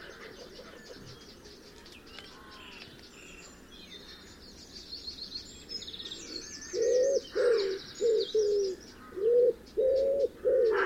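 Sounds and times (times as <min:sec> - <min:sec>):
small birds chirping and twittering: 0:00.0 - 0:10.4
wood pigeon cooing: 0:06.8 - 0:10.8.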